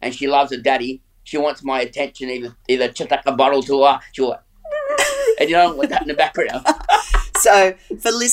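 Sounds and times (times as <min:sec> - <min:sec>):
speech: 0:00.0 - 0:04.4, 0:05.4 - 0:08.3
young female dog whining: 0:04.6 - 0:05.4
laughter: 0:05.0 - 0:07.5.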